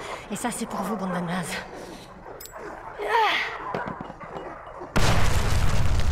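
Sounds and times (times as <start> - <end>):
speech: 0.3 - 1.8
grenade explosion: 4.9 - 6.1.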